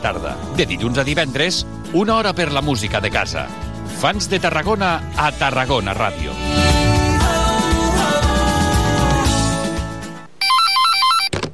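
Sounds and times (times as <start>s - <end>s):
speech: 0.0s - 6.8s
busy music: 0.0s - 10.3s
electronic telephone ring with warbling pattern: 10.4s - 11.4s.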